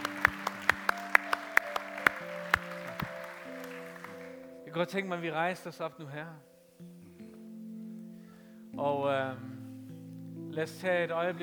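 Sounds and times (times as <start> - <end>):
crowd clapping: 0.0 - 4.6
sustained keyboard chords: 0.0 - 11.4
speech: 4.7 - 6.9, 8.8 - 9.5, 10.6 - 11.4.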